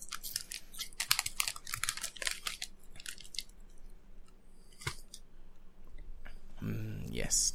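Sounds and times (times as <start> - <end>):
potato chips crunching: 0.0 - 3.5
speech: 7.3 - 7.5.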